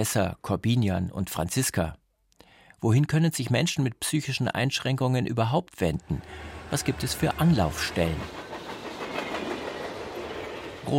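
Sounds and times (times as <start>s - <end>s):
speech: 0.0s - 2.0s, 2.8s - 8.5s
train passing at a railway station: 6.0s - 10.9s.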